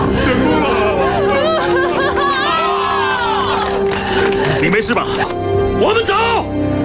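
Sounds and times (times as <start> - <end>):
laughter: 0.2 - 5.4
group of people cheering: 0.6 - 4.6
speech: 4.9 - 6.7.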